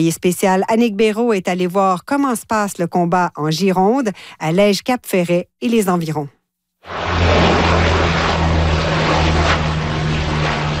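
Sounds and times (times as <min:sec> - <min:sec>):
speech: 0:00.0 - 0:07.6
Canadair firefighting propeller plane droning overhead over a wildfire in Gironde France: 0:06.9 - 0:10.7.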